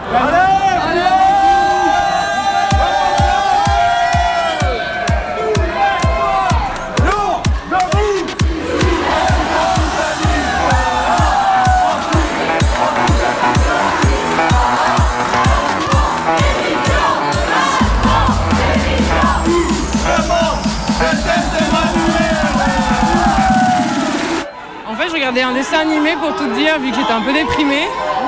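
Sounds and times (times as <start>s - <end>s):
street protest crowd shouting and chanting: 0.0s - 28.2s
steady rhythmic beat: 2.7s - 24.5s
speech: 26.2s - 28.0s.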